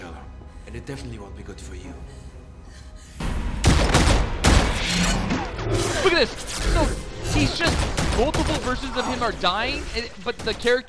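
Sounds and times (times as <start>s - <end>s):
speech: 0.7s - 2.3s, 5.7s - 10.8s
gun emptying its clip in a movie scene: 3.6s - 4.8s, 7.5s - 9.2s.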